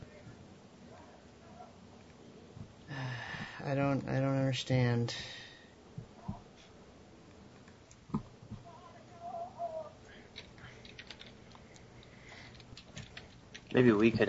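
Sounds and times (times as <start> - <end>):
hiss: 0.0 - 14.2
speech: 3.0 - 5.4, 13.8 - 14.2
typing on a keyboard: 10.3 - 13.8.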